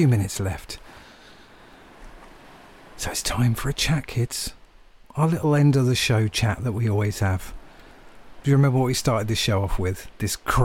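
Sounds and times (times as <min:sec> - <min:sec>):
speech: 0:00.0 - 0:00.8, 0:03.0 - 0:04.6, 0:05.2 - 0:07.6, 0:08.4 - 0:10.6
ocean waves washing onto the shore: 0:00.0 - 0:10.6.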